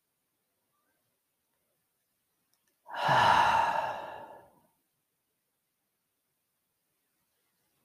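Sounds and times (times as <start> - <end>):
long deep breath: 2.9 - 4.7.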